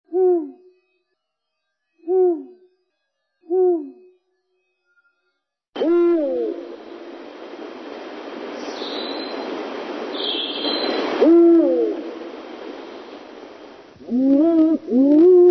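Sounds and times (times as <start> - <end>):
Bubo owl hooting: 5.8 - 6.8, 8.6 - 12.5, 14.0 - 15.5.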